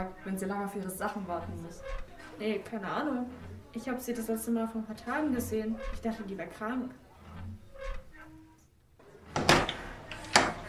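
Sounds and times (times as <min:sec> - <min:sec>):
speech: 0:00.0 - 0:07.0
door opening with a broad scraping rush: 0:00.0 - 0:08.6, 0:09.2 - 0:10.6.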